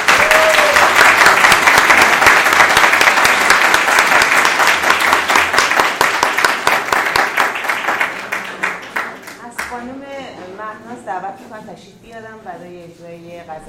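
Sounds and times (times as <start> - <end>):
large audience applause: 0.0 - 9.4
speech: 11.8 - 13.6.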